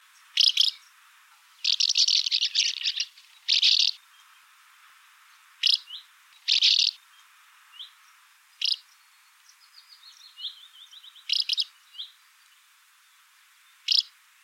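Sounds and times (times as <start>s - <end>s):
house martin calls: 0.3s - 4.0s, 5.4s - 7.0s, 8.6s - 8.9s, 10.4s - 12.1s, 13.8s - 14.2s.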